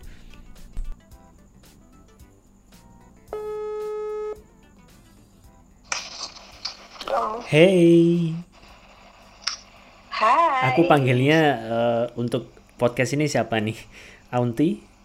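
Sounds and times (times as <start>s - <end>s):
telephone ringback tone while placing a call: 3.3s - 4.4s
speech: 7.2s - 8.5s, 10.7s - 14.9s.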